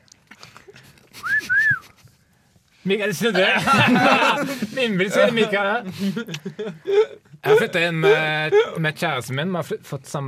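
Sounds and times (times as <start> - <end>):
faint noise: 0.0 - 10.2
person whistling: 1.2 - 2.0
speech: 2.8 - 10.2
laughter: 3.1 - 8.8.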